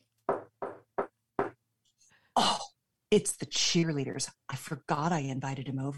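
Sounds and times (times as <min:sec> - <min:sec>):
firm knocking on a door: 0:00.3 - 0:01.6
speech: 0:02.4 - 0:05.9.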